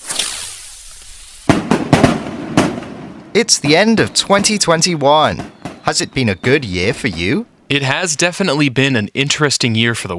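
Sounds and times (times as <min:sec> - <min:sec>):
fireworks bursting: 0:00.0 - 0:08.3
speech: 0:03.4 - 0:10.1.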